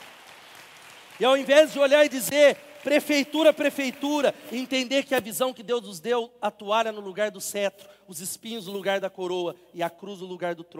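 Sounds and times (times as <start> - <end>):
audience applauding: 0.0 - 4.7
speech: 1.2 - 10.7.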